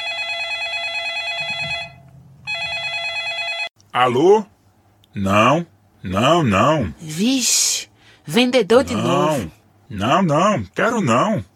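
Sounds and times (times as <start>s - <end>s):
telephone ringing with a bright trilling bell: 0.0s - 3.7s
speech: 3.9s - 4.5s, 5.2s - 7.6s, 8.3s - 11.5s.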